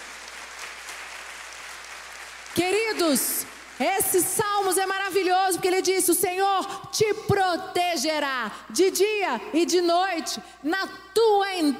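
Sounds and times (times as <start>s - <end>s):
large crowd applauding loudly: 0.0s - 4.1s
speech: 2.6s - 11.7s.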